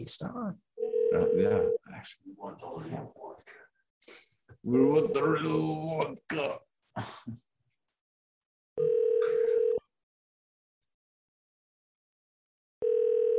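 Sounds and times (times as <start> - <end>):
speech: 0.0 - 3.2, 4.0 - 7.4
telephone ringing unanswered: 0.8 - 1.8, 8.8 - 9.8, 12.8 - 13.3.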